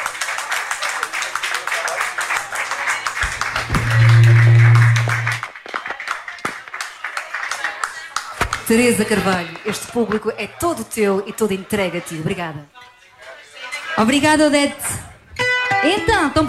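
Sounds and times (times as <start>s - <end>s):
crowd applauding: 0.0s - 10.2s
loud low droning tone: 3.2s - 5.4s
speech: 8.7s - 12.8s, 14.0s - 15.0s, 15.8s - 16.4s.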